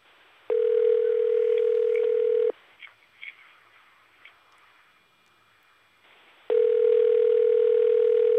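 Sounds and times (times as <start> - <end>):
telephone ringing tone on a call to a house in Santo Domingo: 0.5 - 2.5, 6.5 - 8.3.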